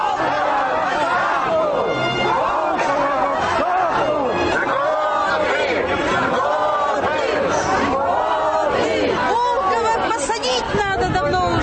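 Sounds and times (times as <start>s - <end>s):
dense crowd chattering and calling out at an outdoor rally: 0.0s - 11.6s.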